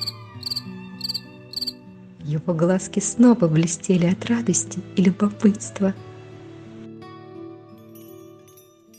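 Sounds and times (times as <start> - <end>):
cricket chirping: 0.0 - 1.8
speech: 2.3 - 6.1.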